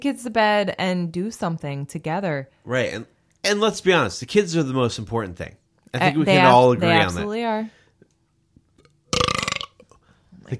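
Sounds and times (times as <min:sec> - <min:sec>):
speech: 0:00.0 - 0:07.8
person burping: 0:08.8 - 0:10.0.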